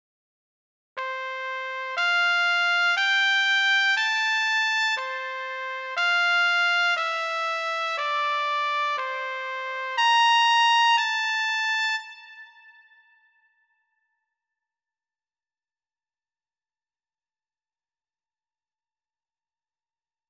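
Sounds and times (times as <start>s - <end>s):
trumpet notes in F major: 1.0s - 12.9s.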